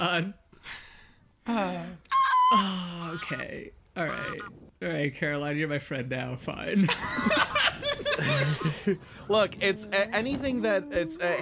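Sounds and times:
speech: 0:00.0 - 0:00.8, 0:01.5 - 0:11.4
woman screaming goose-like honking cries at geese: 0:02.1 - 0:02.7
laughter: 0:06.8 - 0:09.2.

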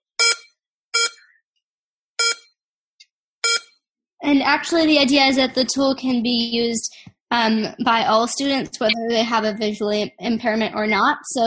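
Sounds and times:
app beeping for valence electrons: 0:00.2 - 0:01.3, 0:02.2 - 0:02.6, 0:03.4 - 0:03.8
speech: 0:04.2 - 0:11.4.

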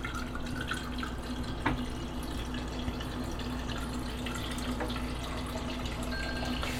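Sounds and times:
tap water running into a glass: 0:00.0 - 0:06.7.

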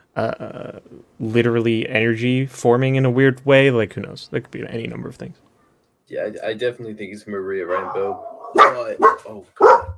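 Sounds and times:
speech: 0:00.2 - 0:05.5, 0:06.1 - 0:09.9
dog barking: 0:07.7 - 0:09.9.

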